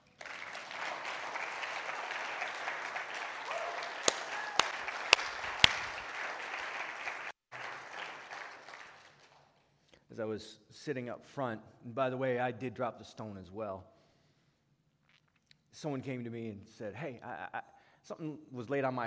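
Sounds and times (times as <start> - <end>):
crowd applauding: 0.0 - 9.5
speech: 10.2 - 13.9, 15.8 - 19.0.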